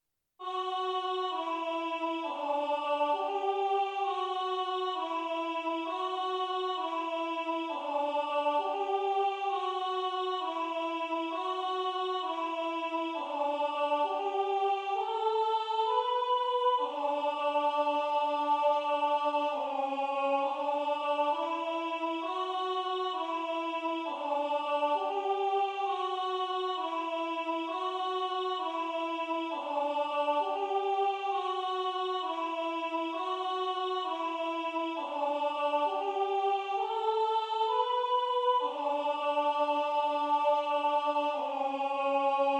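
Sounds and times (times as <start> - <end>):
alto voice singing a chant: 0.4 - 42.5.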